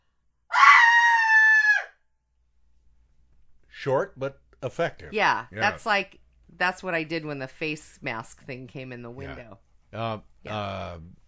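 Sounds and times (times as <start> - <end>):
loud high-pitched human scream: 0.5 - 1.9
speech: 3.8 - 11.2.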